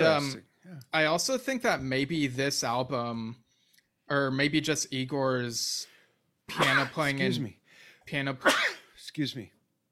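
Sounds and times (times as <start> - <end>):
speech: 0.1 - 3.4, 4.1 - 5.9, 6.5 - 9.6
person sneezing: 6.5 - 7.5.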